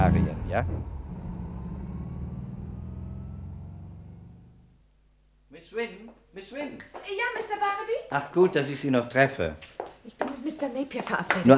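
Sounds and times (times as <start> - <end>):
car engine rumbling while driving to a warehouse: 0.0 - 5.4
speech: 0.5 - 1.0, 5.6 - 11.5.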